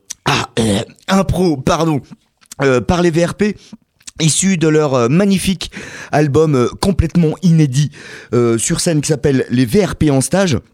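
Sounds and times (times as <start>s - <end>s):
person coughing after swallowing the wrong way: 0.2s - 2.2s
speech: 0.8s - 10.7s.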